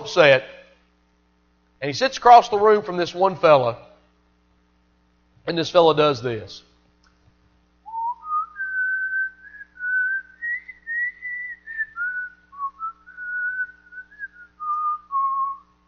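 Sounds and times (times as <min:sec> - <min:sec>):
speech: 0:00.1 - 0:00.5, 0:01.8 - 0:03.9, 0:05.5 - 0:06.7
man whistling a slow hymn melody: 0:07.9 - 0:15.7.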